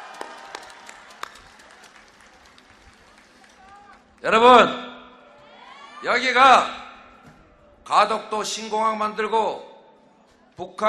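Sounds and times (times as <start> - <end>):
large crowd applauding at a political campaign rally in Busan South Korea: 0.0 - 4.4
speech: 4.2 - 4.8, 6.0 - 6.8, 7.9 - 9.7, 10.6 - 10.8.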